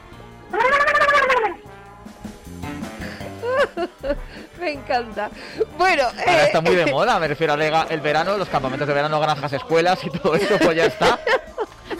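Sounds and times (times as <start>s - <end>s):
music: 0.0s - 11.9s
person imitating a turkey gobble: 0.5s - 1.6s
laughter: 3.4s - 4.2s, 9.2s - 11.9s
speech: 4.1s - 11.4s.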